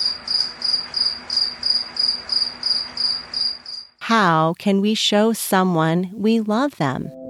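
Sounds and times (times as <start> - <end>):
cricket chirping: 0.0 - 4.0
speech: 4.1 - 7.2.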